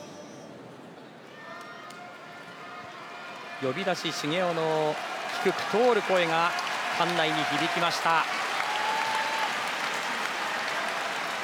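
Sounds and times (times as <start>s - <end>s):
crowd cheering in a sumo arena: 1.3s - 11.4s
large crowd applause in a sumo arena: 3.3s - 11.4s
speech: 3.6s - 8.5s.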